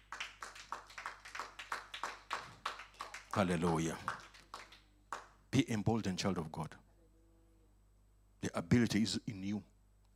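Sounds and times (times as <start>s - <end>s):
audience clapping hands in steady rhythm: 0.0s - 5.5s
speech: 3.4s - 4.2s, 5.5s - 6.8s, 8.4s - 9.7s.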